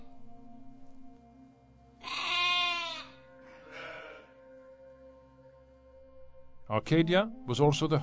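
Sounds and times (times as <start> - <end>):
sheep or goat bleating: 2.0 - 4.3
speech: 6.7 - 8.0.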